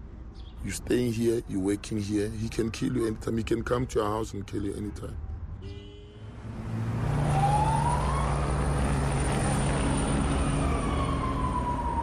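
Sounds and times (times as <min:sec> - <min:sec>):
speech: 0:00.6 - 0:05.8
police car engine roaring: 0:06.4 - 0:12.0
rising wailing police car siren: 0:06.9 - 0:12.0.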